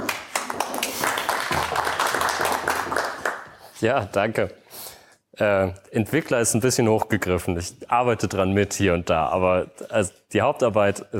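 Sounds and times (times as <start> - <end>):
audience applause welcoming a speaker: 0.0 - 3.6
speech: 3.8 - 4.6, 5.4 - 11.1.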